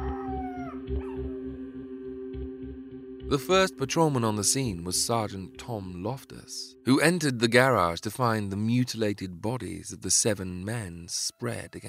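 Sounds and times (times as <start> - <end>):
dog howling mournfully: 0.0 - 1.5
low rhythmic pulsing: 0.8 - 8.8
speech: 3.3 - 11.8.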